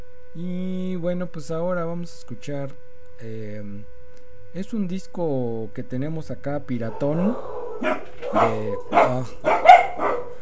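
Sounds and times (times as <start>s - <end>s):
speech: 0.4s - 9.7s
dogs barking: 6.9s - 10.3s.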